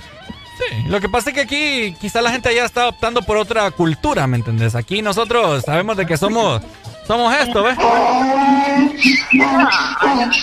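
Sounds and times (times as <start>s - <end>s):
human voice imitating a donkey's bray: 0.6s - 1.0s, 7.5s - 10.4s
speech: 0.8s - 10.4s.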